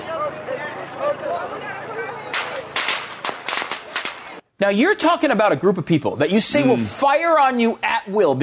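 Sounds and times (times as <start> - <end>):
voices: 0.0 - 4.4
crowd noise: 0.0 - 4.5
string of firecracker bangs: 2.3 - 4.4
speech: 4.6 - 8.4.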